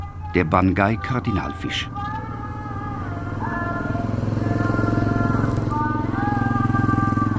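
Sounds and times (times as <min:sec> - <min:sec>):
motorcycle engine shifting and accelerating: 0:00.0 - 0:07.3
speech: 0:00.4 - 0:02.1.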